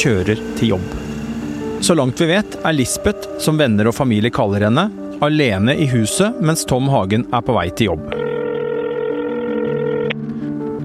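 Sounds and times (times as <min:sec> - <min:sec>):
speech: 0:00.0 - 0:01.1, 0:01.8 - 0:08.3
telephone dial tone: 0:08.1 - 0:10.2.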